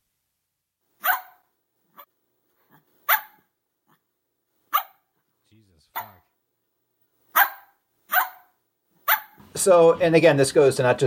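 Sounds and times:
dog barking from a smart speaker skill: 0:01.0 - 0:01.4, 0:03.1 - 0:03.5, 0:04.7 - 0:05.1, 0:05.9 - 0:06.2, 0:07.3 - 0:09.4
speech: 0:09.6 - 0:11.0.

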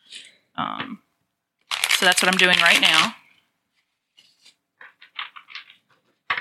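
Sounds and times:
speech: 0:00.6 - 0:01.0, 0:02.0 - 0:03.2
tarot card deck being shuffled for a reading: 0:01.6 - 0:03.2, 0:03.8 - 0:06.4.

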